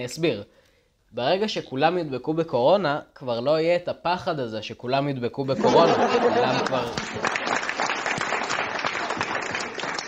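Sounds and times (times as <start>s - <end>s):
speech: 0.0s - 7.6s
laughter: 5.5s - 7.5s
audience applause with many hands clapping: 6.1s - 10.0s.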